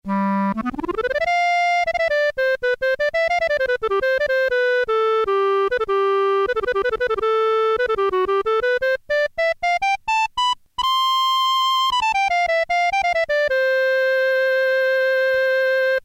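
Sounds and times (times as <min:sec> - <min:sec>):
clarinet on an electronic organ: 0:00.0 - 0:16.0.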